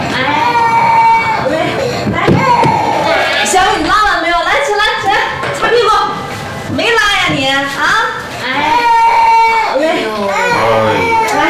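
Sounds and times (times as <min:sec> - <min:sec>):
children crying: 0:00.0 - 0:03.7, 0:08.4 - 0:11.4
adults talking: 0:00.0 - 0:11.4.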